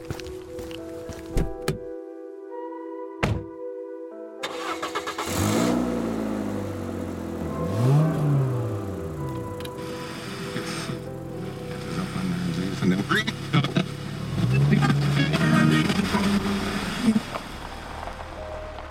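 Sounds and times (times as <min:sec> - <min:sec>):
car engine cranking, starting and revving as the car accelerates away: 0:04.4 - 0:18.9.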